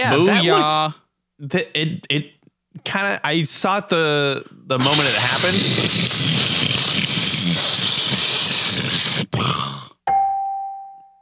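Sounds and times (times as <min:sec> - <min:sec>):
speech: 0:00.0 - 0:06.7
voice imitating a rocket booster landing roar: 0:04.8 - 0:10.0
bell-like tone: 0:10.1 - 0:11.2.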